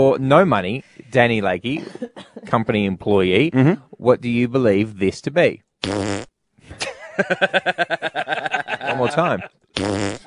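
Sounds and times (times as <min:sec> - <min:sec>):
speech: 0:00.0 - 0:10.1
pre-recorded fart sound effect: 0:05.8 - 0:06.3, 0:09.7 - 0:10.2
laughter: 0:06.7 - 0:09.6.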